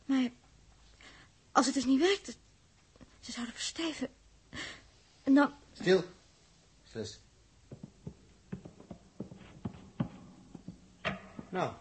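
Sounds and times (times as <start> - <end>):
speech: 1.6 - 2.4, 3.2 - 4.7, 5.3 - 6.2, 6.9 - 7.2, 11.6 - 11.8
soft footsteps with thuds and scuffs: 7.5 - 11.8.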